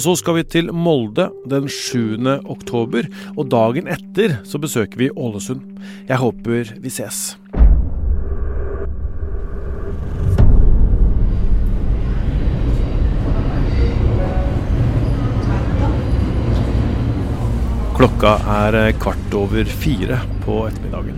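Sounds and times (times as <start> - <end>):
speech: 0.0 - 7.7, 18.0 - 21.1
continuous low roar: 7.6 - 21.1
crowded metro train rumbling at a platform: 10.9 - 21.1
metro passengers murmuring: 13.0 - 20.9.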